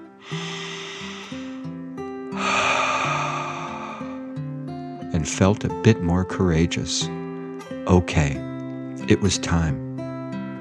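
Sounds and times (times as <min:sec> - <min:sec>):
storyteller voicing a dragon's deep breath: 0:00.0 - 0:01.7, 0:02.4 - 0:04.4
soft music: 0:00.0 - 0:10.5
speech: 0:05.2 - 0:07.2, 0:07.9 - 0:08.5, 0:09.1 - 0:09.8.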